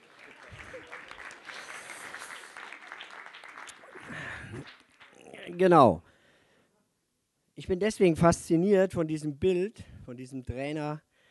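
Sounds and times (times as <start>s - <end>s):
faint voices in a crowd: 0.0s - 3.1s
audience applause: 0.0s - 5.7s
speech: 5.6s - 6.1s, 7.7s - 11.1s.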